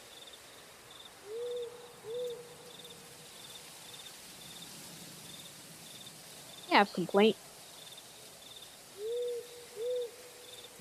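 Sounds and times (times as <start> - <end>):
faint wind rustling through the trees: 0.0 - 10.7
steady high cricket chirps: 0.0 - 10.7
owl hooting in the distance on a wet night: 1.2 - 2.9, 9.0 - 10.7
speech: 6.8 - 7.4.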